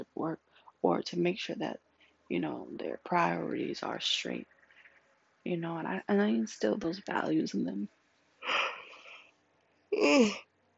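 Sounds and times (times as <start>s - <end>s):
speech: 0.2s - 4.5s, 5.4s - 8.7s, 9.9s - 10.5s
person yawning: 10.0s - 10.4s.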